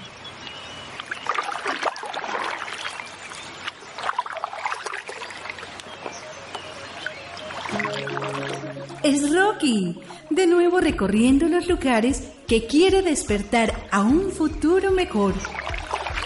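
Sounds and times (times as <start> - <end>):
rushing water of the Aburrá River current: 0.1 - 10.4, 15.2 - 16.2
splashes and sloshes of a dog paddling a small canoe: 0.9 - 9.2, 15.0 - 16.2
speech: 9.0 - 15.6.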